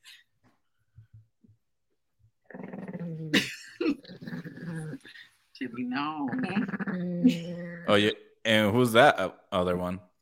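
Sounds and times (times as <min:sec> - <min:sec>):
dog growling: 0:02.4 - 0:05.2, 0:06.2 - 0:08.0
speech: 0:05.8 - 0:10.1.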